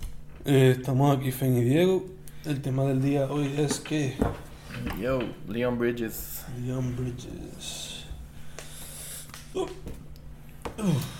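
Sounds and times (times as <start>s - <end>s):
speech: 0.4s - 8.0s, 9.5s - 10.0s, 10.8s - 11.1s
person hiccuping: 9.5s - 10.0s.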